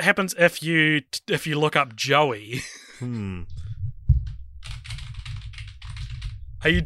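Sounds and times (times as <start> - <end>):
speech: 0.0 - 3.6, 6.6 - 6.8
computer keyboard typing: 3.1 - 6.4.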